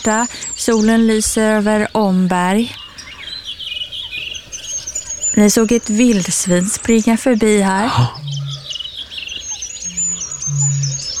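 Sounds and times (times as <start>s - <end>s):
speech: 0.0s - 2.8s, 5.4s - 8.3s
goldcrest singing: 0.0s - 11.1s
low hum: 5.9s - 8.8s, 9.9s - 11.1s.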